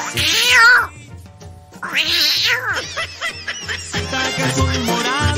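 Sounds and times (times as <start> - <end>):
cat meowing loudly: 0.0 - 1.0, 1.8 - 2.9
speech: 0.1 - 1.0, 1.8 - 5.2
laughter: 2.6 - 5.2.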